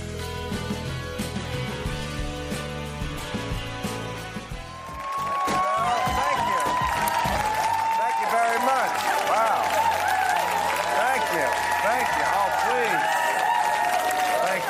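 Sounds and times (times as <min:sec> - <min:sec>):
music: 0:00.0 - 0:14.6
studio audience applause and cheering: 0:04.2 - 0:14.6.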